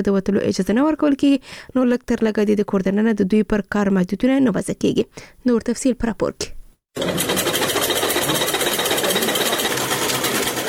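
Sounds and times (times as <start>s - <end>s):
speech: 0.0s - 7.3s
sewing machines running in a tailoring workshop: 7.0s - 10.6s.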